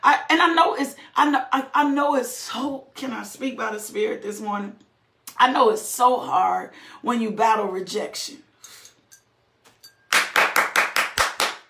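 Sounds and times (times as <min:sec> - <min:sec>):
speech: 0:00.0 - 0:08.5
hand clapping: 0:09.7 - 0:11.6.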